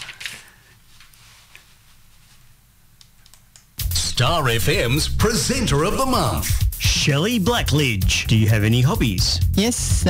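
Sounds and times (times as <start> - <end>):
paper rustling as it is handled: 0.0 - 2.5
soft shuffling: 0.8 - 2.6
speech: 4.2 - 10.0.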